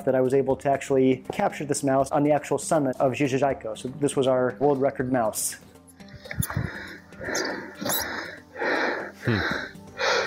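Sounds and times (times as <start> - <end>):
speech: 0.0 - 5.7, 6.3 - 7.9, 9.2 - 9.7
heavy panting at high altitude: 6.2 - 10.2.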